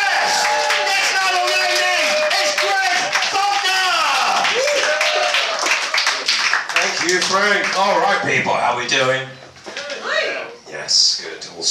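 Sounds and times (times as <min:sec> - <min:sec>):
audience cheering and whooping voices: 0:00.0 - 0:06.2
audience clapping for a comedian: 0:00.0 - 0:08.2
speech: 0:07.4 - 0:09.4, 0:11.6 - 0:11.7.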